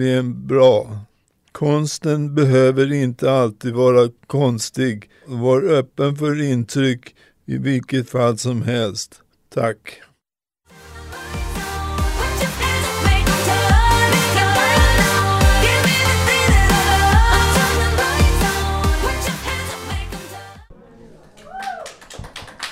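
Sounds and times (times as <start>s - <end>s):
speech: 0.0s - 10.1s
up-tempo pop song with a driving beat and layered vocals: 10.7s - 20.8s.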